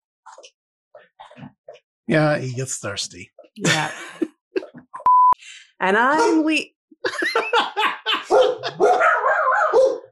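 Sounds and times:
speech: 0:00.4 - 0:04.3, 0:05.8 - 0:08.0
laughter: 0:03.6 - 0:04.8, 0:07.0 - 0:09.1
dog barking in a living room: 0:08.1 - 0:10.1.

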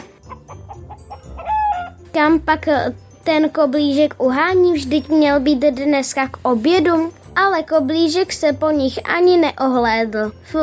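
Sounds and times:
hens clucking: 0:00.0 - 0:02.0
rooster crowing: 0:00.3 - 0:02.0
speech: 0:02.1 - 0:10.6.

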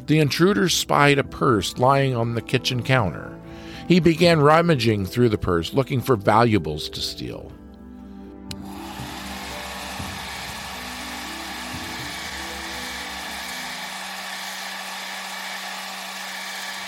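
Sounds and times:
speech: 0:00.1 - 0:07.6
blow dryer running: 0:08.5 - 0:16.8.

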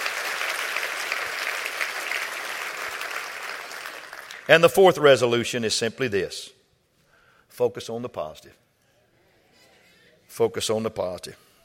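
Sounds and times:
audience clapping in dense applause: 0:00.0 - 0:04.5
speech: 0:04.5 - 0:06.6, 0:07.5 - 0:08.6, 0:10.3 - 0:11.5.

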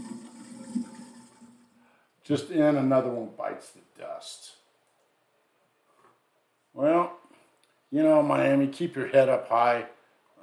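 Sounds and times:
brief gurgling surge of toilet water: 0:00.0 - 0:01.8
toilet flushing with rushing swirl of water: 0:00.0 - 0:01.8
speech: 0:02.3 - 0:04.6, 0:06.8 - 0:07.1, 0:07.9 - 0:10.4.

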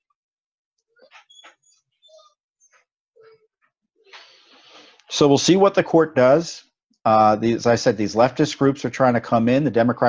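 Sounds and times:
dog whining and crying: 0:01.0 - 0:03.5
speech: 0:05.1 - 0:10.0.

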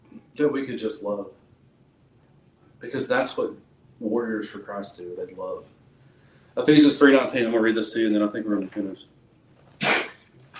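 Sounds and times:
speech: 0:00.4 - 0:01.4, 0:02.8 - 0:05.8, 0:06.6 - 0:09.1
faint breathy puff: 0:09.8 - 0:10.2
person sneezing: 0:09.8 - 0:10.3.

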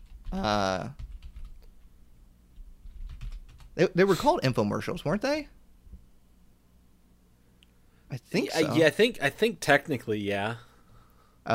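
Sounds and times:
typing on a computer keyboard: 0:00.0 - 0:01.8, 0:02.6 - 0:03.8
speech: 0:00.3 - 0:01.0, 0:03.8 - 0:05.6, 0:08.1 - 0:10.7.

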